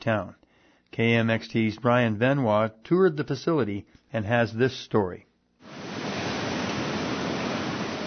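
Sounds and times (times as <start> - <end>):
speech: 0.0 - 5.3
water rushing through fish hatchery tanks: 5.6 - 8.0.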